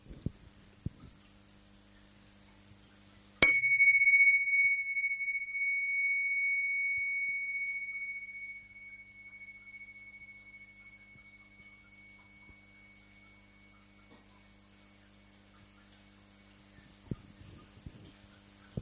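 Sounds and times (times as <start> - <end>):
meditation gong struck during a group meditation session: 3.4 - 16.6.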